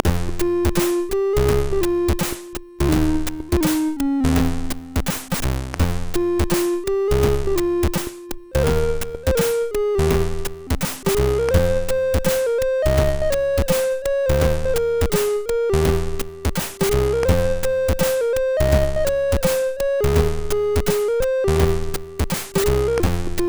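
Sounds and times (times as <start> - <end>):
chiptune melody on a MOS6581R3 SID chip: 0.0 - 23.4.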